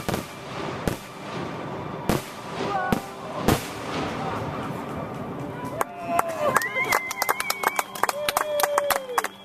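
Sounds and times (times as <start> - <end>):
Independence Day fireworks exploding in Claremont Minnesota: 0.0 - 6.8
murmur of voices: 2.4 - 7.0
rising whistles of fireworks: 6.1 - 9.4.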